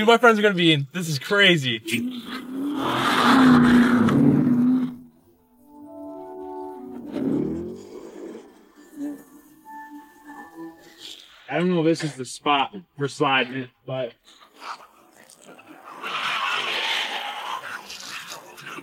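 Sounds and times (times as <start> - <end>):
speech: 0.0 - 4.1, 11.6 - 14.8
replica rally car engine revving: 1.8 - 5.1, 6.9 - 8.6.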